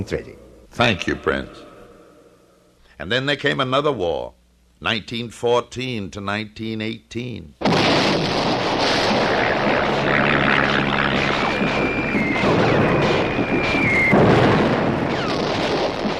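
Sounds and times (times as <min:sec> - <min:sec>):
speech: 0:00.0 - 0:01.7, 0:03.0 - 0:08.6
heavy rumbling and booming noise: 0:07.6 - 0:16.1
aeroplane engine drone: 0:08.7 - 0:15.3
high whining tone: 0:08.7 - 0:15.4.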